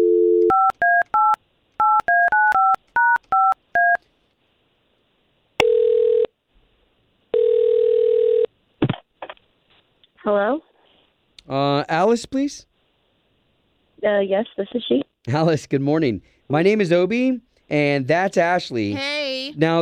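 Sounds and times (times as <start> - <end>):
telephone dial tone: 0.0 - 4.0, 5.6 - 6.3, 7.3 - 8.5
touch-tone keypad beeps as a number is dialed: 0.4 - 4.0
speech: 10.3 - 10.7, 11.5 - 12.7, 14.0 - 19.8.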